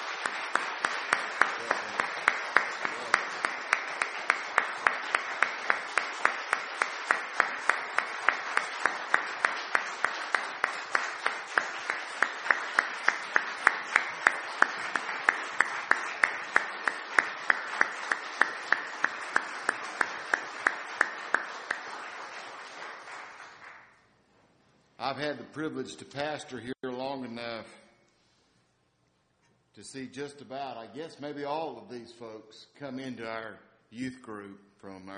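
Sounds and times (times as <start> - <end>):
large church audience applauding indoors: 0.0 - 24.0
speech: 25.1 - 26.8, 30.1 - 35.1.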